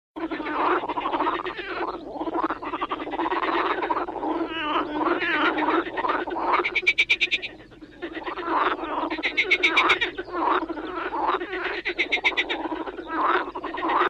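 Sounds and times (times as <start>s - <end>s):
big frog croaking: 0.2s - 14.0s.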